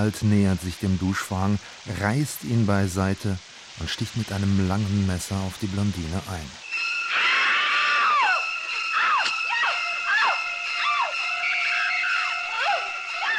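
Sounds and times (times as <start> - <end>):
speech: 0.0 - 6.6
shrieking staccato strings from a horror film score: 6.6 - 13.3.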